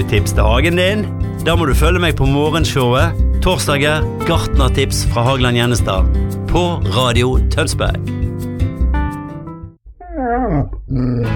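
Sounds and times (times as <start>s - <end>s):
speech: 0.0s - 8.2s
dog whining: 10.0s - 11.2s.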